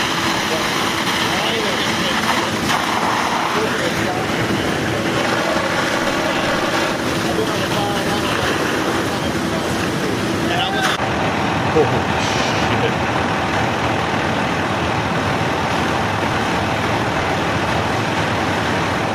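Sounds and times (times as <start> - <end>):
continuous roadway-like noise: 0.0 - 19.1
multiple fire trucks and emergency vehicles idling at a fire: 0.0 - 19.1
air brake hiss: 12.2 - 12.7.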